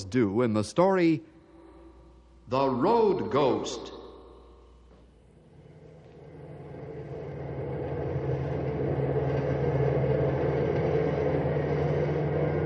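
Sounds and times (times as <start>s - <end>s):
speech: 0.0s - 1.3s, 2.5s - 4.0s
heavy bus engine roaring at speed on a highway: 6.2s - 12.6s.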